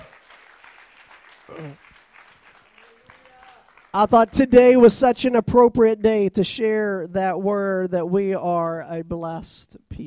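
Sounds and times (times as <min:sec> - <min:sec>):
crowd applauding after a prayer: 0:00.0 - 0:05.0
speech: 0:01.5 - 0:01.8, 0:04.0 - 0:10.0.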